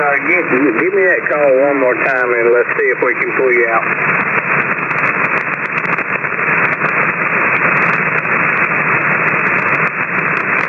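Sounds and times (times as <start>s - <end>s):
crackling bursts of radio interference: 0.0s - 10.6s
loud hiss of radio static over weak transmission: 0.0s - 10.6s
speech: 0.1s - 4.4s.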